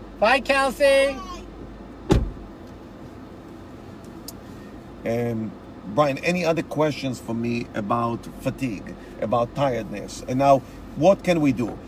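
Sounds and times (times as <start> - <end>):
low steady hum: 0.0 - 11.8
speech: 0.2 - 1.3, 5.0 - 11.8
car door lock being unlocked: 2.1 - 2.4.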